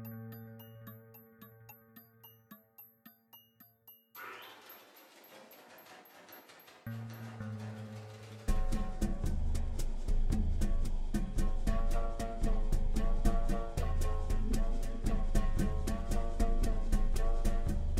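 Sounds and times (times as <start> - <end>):
jungle temple ambience: 4.2 - 17.9.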